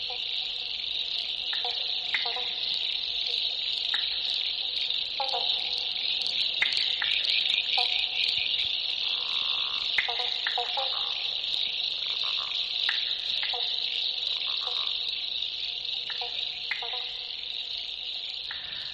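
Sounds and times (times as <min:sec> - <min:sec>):
frog calls: 0:00.0 - 0:18.9
steady high-pitched hiss: 0:00.0 - 0:18.9.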